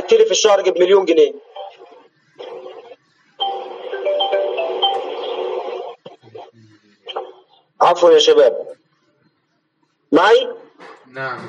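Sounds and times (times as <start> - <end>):
speech: 0.1 - 1.4, 7.8 - 8.8, 10.1 - 11.4
phone ringing with a melodic ringtone: 1.5 - 1.8, 3.4 - 5.9.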